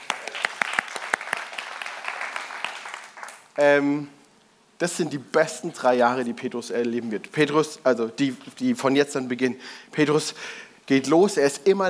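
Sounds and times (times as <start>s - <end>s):
crowd applause: 0.0s - 3.6s
speech: 3.6s - 4.2s, 4.8s - 11.8s.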